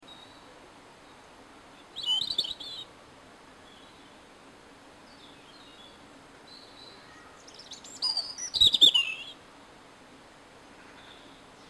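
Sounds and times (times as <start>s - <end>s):
European robin twittering: 1.8s - 2.9s, 5.5s - 9.4s.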